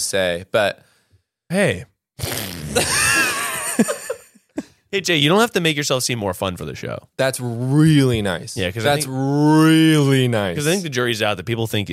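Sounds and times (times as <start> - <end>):
speech: 0.1 - 0.9, 1.5 - 3.1, 4.9 - 11.9
cartoonish fart sound effect: 2.2 - 3.1.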